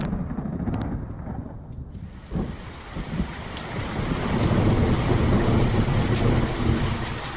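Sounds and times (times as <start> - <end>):
deep low rumble: 0.0 - 7.0
torrential monsoon rain downpour: 1.6 - 7.3.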